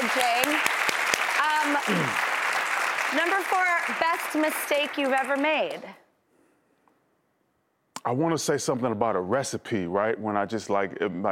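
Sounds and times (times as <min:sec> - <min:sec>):
people clapping for each other: 0:00.0 - 0:06.0
speech: 0:01.7 - 0:02.3, 0:03.1 - 0:06.0, 0:08.0 - 0:11.3.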